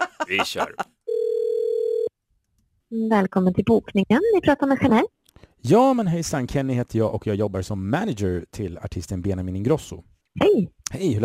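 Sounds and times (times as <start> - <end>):
laughter: 0.0 - 1.0
speech: 0.3 - 0.9, 2.9 - 11.2
telephone ringback tone during a call to a hotel in Kalmar: 1.1 - 2.1.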